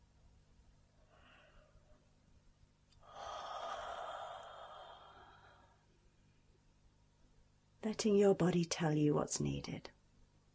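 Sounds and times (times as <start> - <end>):
person taking a deep breath while yawning: 3.0 - 5.9
speech: 7.9 - 10.0.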